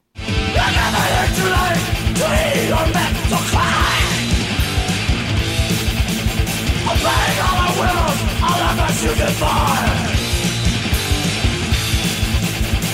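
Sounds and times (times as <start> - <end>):
dense distorted guitars: 0.1 - 12.9
thrash metal song: 0.2 - 12.9
harsh shouted vocals: 0.3 - 4.8, 6.6 - 10.6
pounding rapid drums: 0.3 - 12.9
speech: 9.0 - 10.2.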